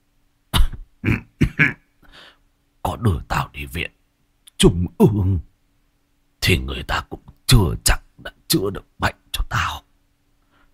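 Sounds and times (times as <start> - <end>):
old ailing man coughing wretchedly: 0.6 - 1.9
speech: 1.0 - 1.8, 3.0 - 4.0, 4.6 - 5.4, 6.5 - 9.8.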